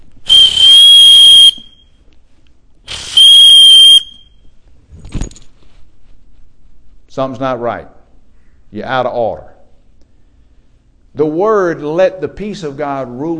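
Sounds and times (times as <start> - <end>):
referee's whistle blasts: 0.3 - 2.0, 2.9 - 4.4
speech: 7.2 - 8.0, 8.7 - 9.6, 11.1 - 13.3.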